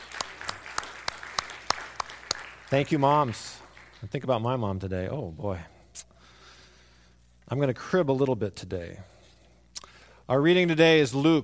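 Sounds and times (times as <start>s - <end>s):
small audience clapping: 0.0s - 4.6s
speech: 2.7s - 6.1s, 7.5s - 9.1s, 10.3s - 11.4s.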